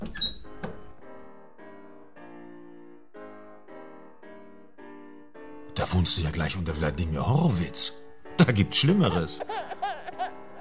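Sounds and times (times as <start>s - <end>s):
window squeak: 0.0s - 1.0s
speech: 5.8s - 9.8s.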